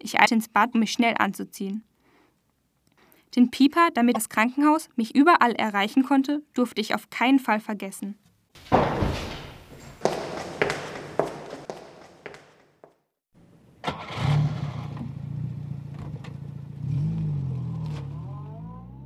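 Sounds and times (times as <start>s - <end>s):
speech: 0.0s - 1.9s, 3.3s - 9.3s
sharp thuds: 8.6s - 12.6s
footsteps: 8.6s - 13.0s
car engine starting and car driving off: 13.8s - 19.0s.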